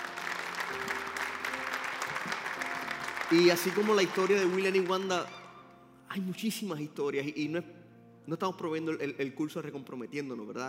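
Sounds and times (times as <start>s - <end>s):
crowd applauding: 0.0s - 5.7s
speech: 3.3s - 5.4s, 6.1s - 10.6s.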